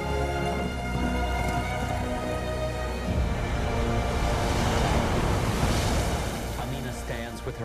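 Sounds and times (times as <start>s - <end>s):
sustained musical tones: 0.0s - 7.6s
waves washing onto a shore: 3.0s - 7.6s.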